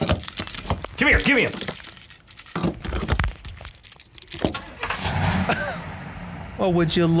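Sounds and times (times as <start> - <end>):
car keys jangling in the ignition: 0.0 - 5.8
speech: 1.0 - 1.7, 6.6 - 7.1.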